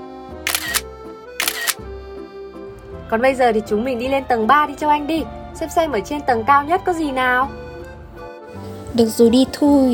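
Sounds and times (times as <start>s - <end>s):
camera shutter clicks as photos are taken: 0.5s - 0.8s, 1.4s - 1.8s
speech: 3.1s - 7.6s, 9.0s - 9.9s.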